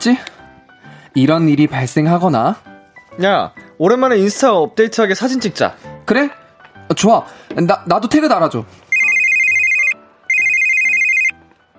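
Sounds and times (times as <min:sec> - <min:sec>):
speech: 0:00.0 - 0:00.3, 0:01.2 - 0:08.8
mobile phone ringtone for an incoming call: 0:08.9 - 0:11.4.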